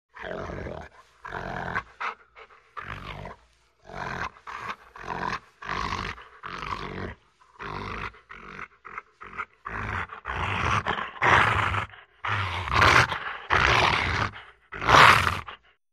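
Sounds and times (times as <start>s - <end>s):
Rottweiler dog growling: 0.1s - 15.8s.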